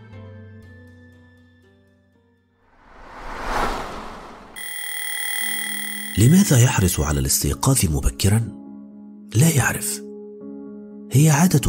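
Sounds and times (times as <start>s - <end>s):
rush of noise: 2.7s - 4.6s
alarm clock ringing: 4.6s - 7.2s
speech: 6.2s - 8.6s, 9.3s - 10.1s, 11.1s - 11.6s
soft music: 6.2s - 11.6s.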